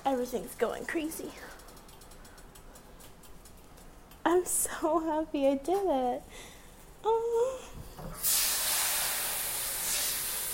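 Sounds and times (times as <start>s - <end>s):
speech: 0.1s - 1.6s, 4.3s - 8.4s
hot pan hissing: 8.2s - 10.5s.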